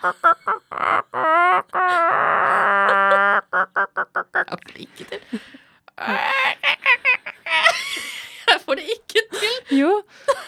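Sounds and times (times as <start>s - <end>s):
speech: 0.0s - 0.9s
person imitating a hen clucking: 0.0s - 4.7s, 6.0s - 7.3s
laughter: 0.0s - 8.7s, 9.3s - 10.4s.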